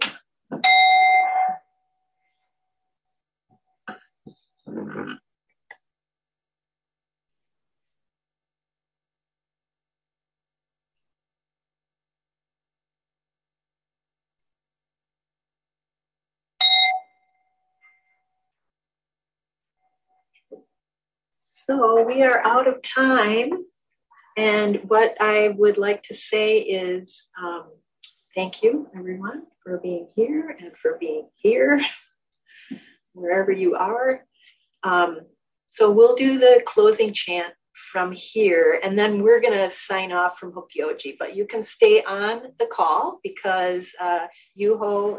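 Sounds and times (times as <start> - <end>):
meditation bell struck and ringing: 0.6 - 1.8, 16.6 - 18.2
speech: 21.6 - 23.7, 24.4 - 27.8, 28.4 - 32.0, 32.7 - 45.1.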